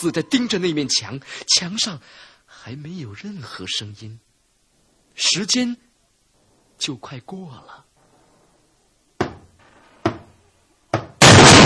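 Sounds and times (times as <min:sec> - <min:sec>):
speech: 0:00.0 - 0:04.3, 0:05.2 - 0:05.9, 0:06.8 - 0:07.9
knocks on a room door: 0:09.2 - 0:10.3
loud burst of noise: 0:11.2 - 0:11.6.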